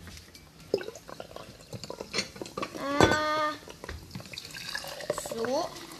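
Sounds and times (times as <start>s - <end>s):
apple juice being poured into a glass: 0.7s - 2.6s, 3.7s - 5.9s.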